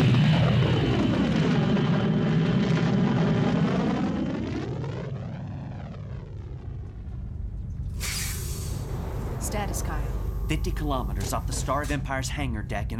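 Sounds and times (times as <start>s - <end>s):
spaceship engines roaring during liftoff: 0.0s - 12.9s
sweeping harmonic whine of spaceship powering up: 0.0s - 12.9s
sharp burst of hiss: 8.0s - 9.0s
speech: 9.6s - 12.9s.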